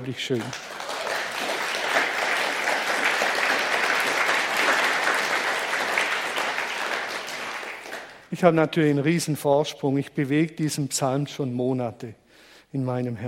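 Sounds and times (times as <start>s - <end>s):
speech: 0.0s - 0.8s, 8.3s - 13.2s
applause from a sizable audience: 0.0s - 8.2s.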